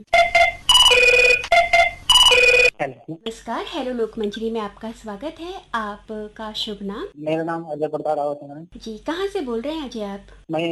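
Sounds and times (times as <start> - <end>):
electronic telephone ringtone as a caller joins a call-in farming program: 0.1 - 2.7
speech: 2.8 - 10.7.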